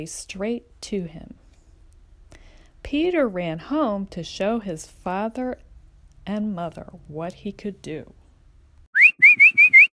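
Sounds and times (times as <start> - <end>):
speech: 0.0 - 1.4, 2.8 - 5.6, 6.3 - 8.2
person whistling clear notes: 9.0 - 9.9.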